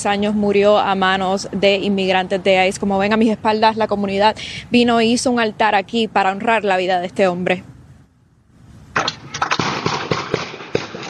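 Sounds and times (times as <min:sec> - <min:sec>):
speech: 0:00.0 - 0:07.7
gunshots outdoors during a shooting involving ICE agents in Maine: 0:09.0 - 0:11.0.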